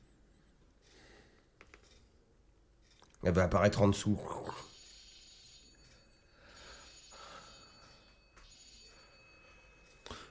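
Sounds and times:
speech: 3.2 - 4.6
woman's mobile phone ringtone in a film: 4.7 - 10.2.

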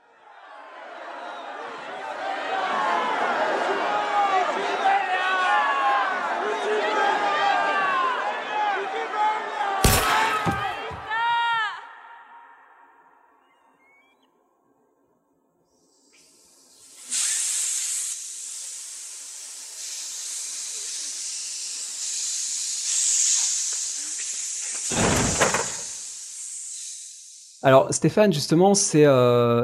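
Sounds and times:
crowd hissing in protest: 0.4 - 12.9, 15.7 - 27.8
sharp bang: 9.8 - 11.1
thud: 9.8 - 11.2, 24.9 - 25.9
speech: 27.7 - 29.6.

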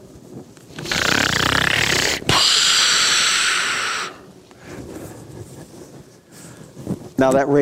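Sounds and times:
person imitating loud snoring: 0.8 - 4.2
speech: 7.2 - 7.5.

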